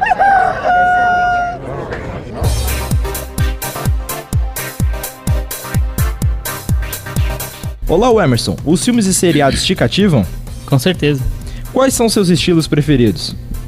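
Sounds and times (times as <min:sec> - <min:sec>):
rooster crowing: 0:00.0 - 0:02.1
punchy rhythmic music beat: 0:02.4 - 0:12.6
speech: 0:07.9 - 0:13.4.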